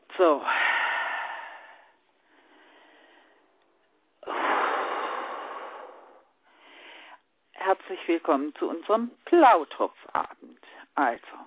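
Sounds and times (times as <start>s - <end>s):
speech: 0.2s - 0.6s, 7.8s - 11.4s
slow deep breathing in and out: 0.4s - 7.3s.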